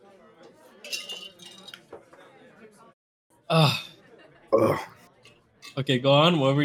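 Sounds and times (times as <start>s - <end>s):
glasses clinking in a toast: 0.8s - 1.8s, 5.2s - 5.9s
speech: 3.5s - 3.8s, 5.8s - 6.6s
short throaty bursts: 4.6s - 5.0s.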